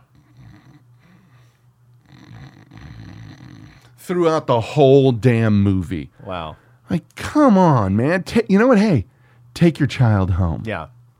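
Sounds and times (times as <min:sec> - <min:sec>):
person snoring: 0:00.0 - 0:04.0
speech: 0:04.0 - 0:11.0.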